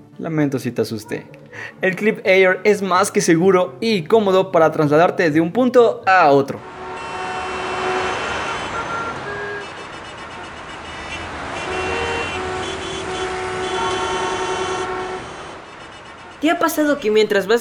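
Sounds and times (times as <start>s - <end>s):
speech: 0.2s - 6.8s, 16.4s - 17.6s
rumble of car and truck engines in a traffic jam: 6.6s - 16.4s
car horns in a traffic jam: 6.6s - 16.6s.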